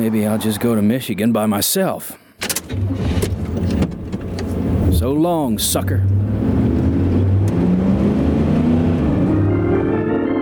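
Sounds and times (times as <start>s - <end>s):
speech: 0.0s - 3.2s, 5.0s - 6.2s
stolen car engine revving through gear changes: 2.7s - 10.3s.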